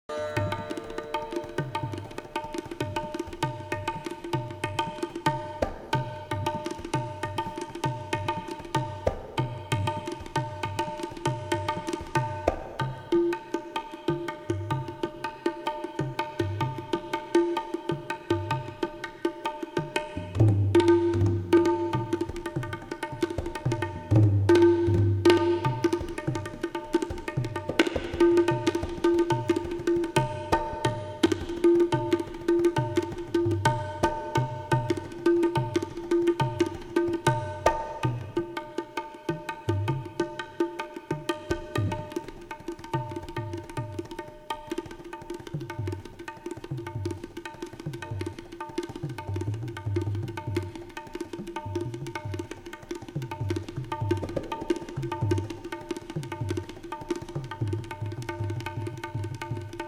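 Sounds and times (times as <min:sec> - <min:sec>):
tabla solo: 0:00.1 - 0:59.8.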